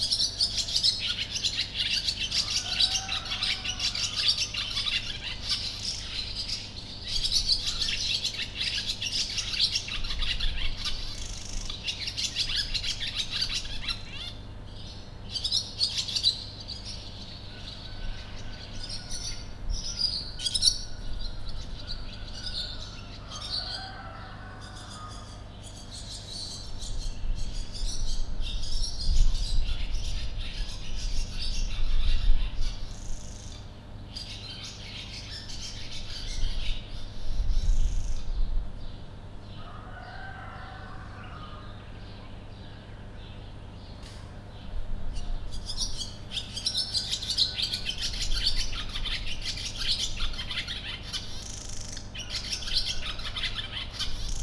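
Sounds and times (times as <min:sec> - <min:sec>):
sand martins in Potamia: 0:00.0 - 0:41.5, 0:43.4 - 0:54.4
wind in Potamia: 0:00.0 - 0:54.4
rooster in Potamia: 0:02.3 - 0:04.8, 0:17.5 - 0:25.5, 0:39.6 - 0:42.0, 0:46.7 - 0:48.3, 0:52.2 - 0:53.9.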